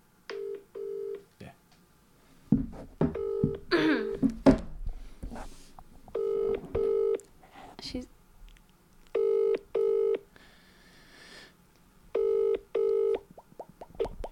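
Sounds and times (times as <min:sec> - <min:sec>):
unanswered telephone call ringing: 0:00.4 - 0:01.2, 0:03.1 - 0:04.2, 0:06.2 - 0:07.2, 0:09.2 - 0:10.2, 0:12.2 - 0:13.2
people talking: 0:07.8 - 0:08.1.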